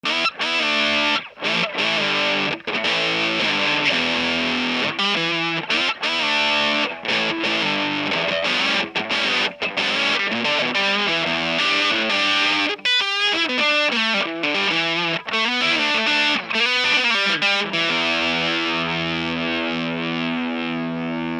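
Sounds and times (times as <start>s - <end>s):
full gain tone: 0.0s - 21.3s.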